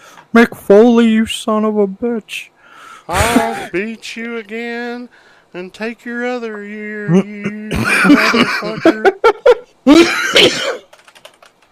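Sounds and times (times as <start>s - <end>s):
speech: 0.3s - 10.8s
laughter: 3.1s - 3.8s, 7.1s - 10.6s
single loud harsh cough: 3.2s - 3.7s, 7.5s - 8.9s, 9.9s - 10.9s
light taps on a keyboard: 10.8s - 11.7s.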